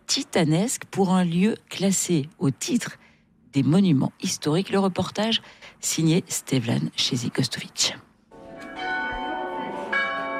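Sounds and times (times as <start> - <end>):
speech: 0.2 - 8.1
two church bells ringing in a monastery tower: 8.3 - 10.3.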